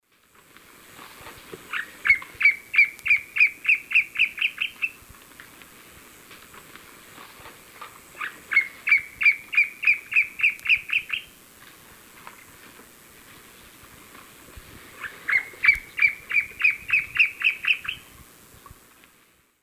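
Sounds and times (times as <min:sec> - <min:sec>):
Cercomacra serva song in the Eastern Lowlands of South America: 0:01.7 - 0:05.0, 0:08.2 - 0:11.3, 0:15.0 - 0:18.0.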